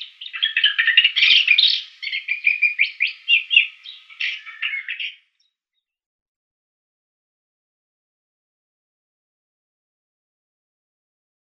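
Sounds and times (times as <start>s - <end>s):
Isabelline shrike song of buzzy chattering notes: 0.0s - 5.2s.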